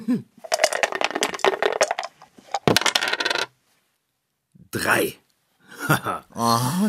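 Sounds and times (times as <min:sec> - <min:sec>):
speech: 0:00.1 - 0:00.4, 0:04.7 - 0:05.2, 0:05.9 - 0:06.8
dice clattering across a hard surface: 0:00.4 - 0:03.5.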